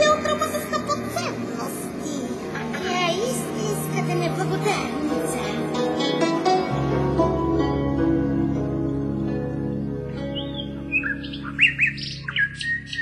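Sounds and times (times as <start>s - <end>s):
soft sustained musical drone: 0.0s - 13.0s
nightingale warbling trills and chirps: 10.2s - 13.0s.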